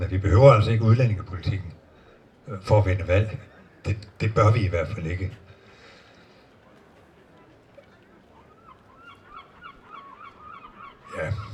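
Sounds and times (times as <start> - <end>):
speech: 0.0 - 1.8, 2.4 - 5.4
noise: 0.0 - 11.5
flock of geese honking and screeching outdoors: 8.2 - 11.5.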